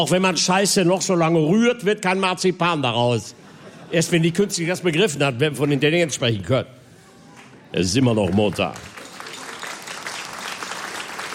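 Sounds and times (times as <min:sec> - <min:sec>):
speech: 0:00.0 - 0:06.8, 0:07.7 - 0:08.9
audience applause at a live comedy show: 0:08.0 - 0:11.3.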